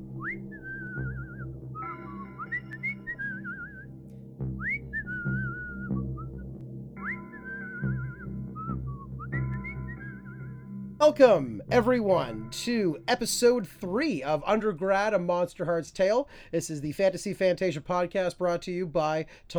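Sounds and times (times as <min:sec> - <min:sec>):
steady low instrumental music: 0:00.0 - 0:15.0
old carver whistling a melodic tune: 0:00.1 - 0:04.0, 0:04.6 - 0:13.1
speech: 0:11.0 - 0:19.5.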